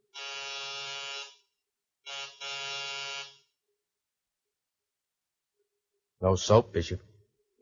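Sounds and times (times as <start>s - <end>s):
apartment door buzzer being pressed: 0.1s - 1.5s, 2.1s - 3.5s
speech: 6.2s - 7.1s.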